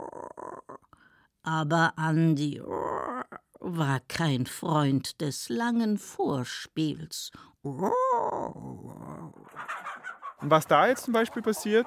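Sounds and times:
speech: 1.5s - 2.8s, 3.6s - 8.8s, 10.4s - 11.8s
hen squawking and screeching fighting off a young rooster: 9.5s - 10.5s.

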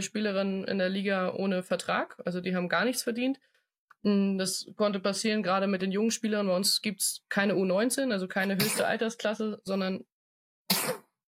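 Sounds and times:
speech: 0.0s - 10.1s
baby boy sneezing: 8.6s - 8.8s, 10.7s - 11.1s.

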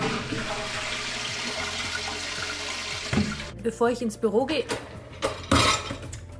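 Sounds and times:
toilet flushing: 0.0s - 3.5s
speech: 3.6s - 4.9s
dishes clinking while loading a dishwasher: 5.2s - 6.2s.

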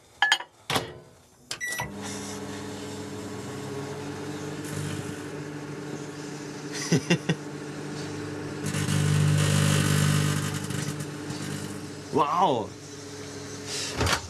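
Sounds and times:
microwave oven running with grape inside, humming drone: 0.8s - 14.2s
laughter: 6.7s - 7.4s
speech: 6.9s - 7.4s, 12.2s - 12.8s
microwave oven door shutting clunks: 13.8s - 14.2s.

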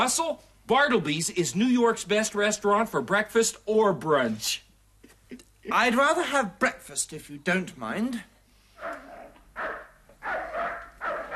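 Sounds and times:
speech: 0.0s - 4.7s, 5.3s - 9.7s
dog barking: 8.8s - 11.3s.

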